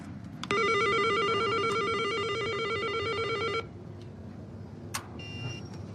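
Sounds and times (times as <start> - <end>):
apartment-entrance doorbell electronic buzz: 0.5 - 3.6.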